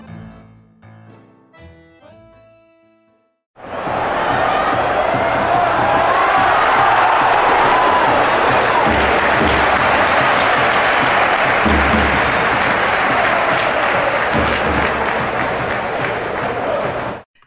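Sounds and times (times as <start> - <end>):
huge stadium crowd of football fans roaring and cheering: 3.6 - 17.3.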